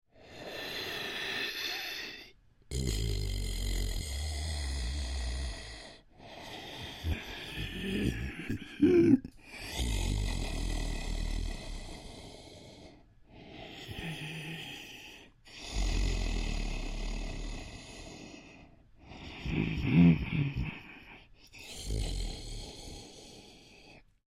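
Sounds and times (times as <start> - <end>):
troll creature breathing calmly: 0.1 - 3.0, 3.7 - 24.2.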